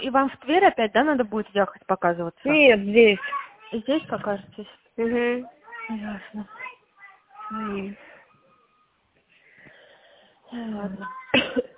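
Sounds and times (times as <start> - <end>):
speech: 0.1 - 6.8, 7.5 - 8.1, 10.5 - 11.7
woman coughing with a rough wheezy voice: 11.2 - 11.7.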